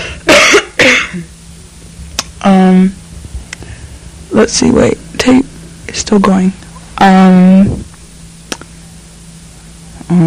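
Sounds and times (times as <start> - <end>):
person coughing: 0.0 - 1.3
faint hum: 0.0 - 10.2
voiced throat clearing: 0.1 - 1.3
speech: 4.4 - 7.8.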